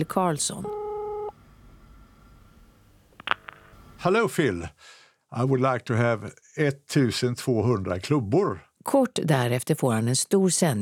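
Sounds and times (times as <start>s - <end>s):
speech: 0.0s - 0.8s, 4.0s - 10.7s
telephone number being dialed with short sharp beeps and clicks: 0.6s - 1.3s
telephone dial tone: 0.6s - 1.4s.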